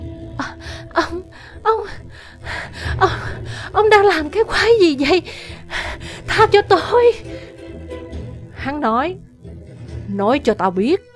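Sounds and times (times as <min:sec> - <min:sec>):
frightened woman sobbing and gasping for breath: 0:00.4 - 0:06.6
speech: 0:03.8 - 0:05.5, 0:06.4 - 0:07.4, 0:08.6 - 0:09.3, 0:10.1 - 0:11.1.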